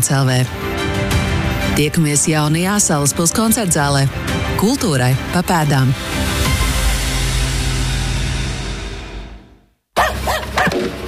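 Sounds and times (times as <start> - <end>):
speech: 0.0 - 0.7, 1.7 - 6.5
whoosh of noise: 5.7 - 9.7
dog barking: 10.0 - 10.9.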